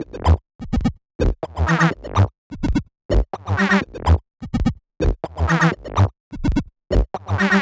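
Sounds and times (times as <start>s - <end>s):
funky underground bass loop in E: 0.0s - 0.4s, 1.2s - 2.3s, 3.1s - 7.5s.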